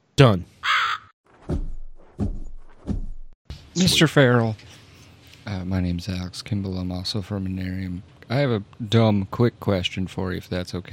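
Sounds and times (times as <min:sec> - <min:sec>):
speech: 0:00.2 - 0:00.5, 0:03.8 - 0:04.7, 0:05.5 - 0:10.9
crow cawing: 0:00.6 - 0:01.2.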